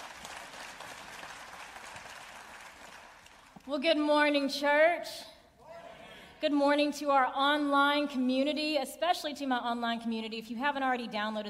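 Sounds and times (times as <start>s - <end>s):
audience applauding: 0.0s - 3.7s
speech: 3.7s - 5.3s, 6.4s - 11.4s.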